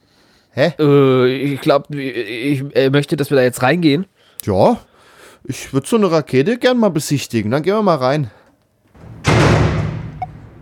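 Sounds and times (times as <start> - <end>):
speech: 0.6 - 8.4
heavy door slamming shut: 9.0 - 10.6.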